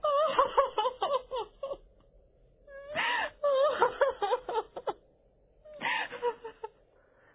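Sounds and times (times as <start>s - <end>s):
female audio drama character wailing sobs: 0.0s - 1.9s, 2.7s - 5.0s, 5.7s - 6.8s.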